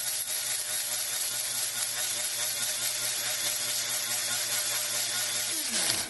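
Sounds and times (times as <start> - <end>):
bone saw cutting: 0.1 - 6.0.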